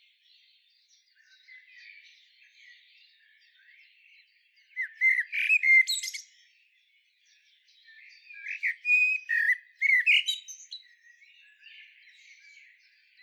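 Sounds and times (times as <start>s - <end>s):
common blackbird Turdus merula singing: 0.0s - 13.2s.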